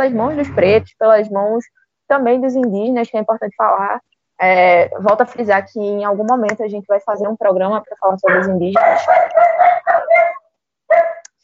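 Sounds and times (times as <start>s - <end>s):
speech: 0.0s - 10.3s
dogs barking: 8.3s - 11.3s.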